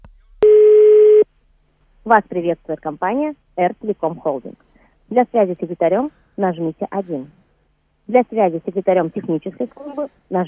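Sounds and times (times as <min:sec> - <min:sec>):
telephone ringing tone over a phone line while calling a number: 0:00.4 - 0:01.2
speech: 0:02.1 - 0:07.4, 0:08.1 - 0:10.4.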